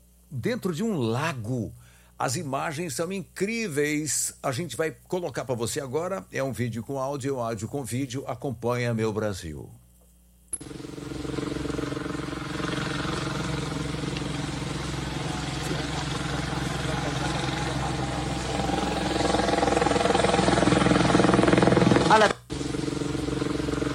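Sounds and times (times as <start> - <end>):
speech: 0.3 - 9.8, 10.5 - 10.9
helicopter engine and rotor drone: 10.5 - 23.9
rough rumble: 11.2 - 22.1.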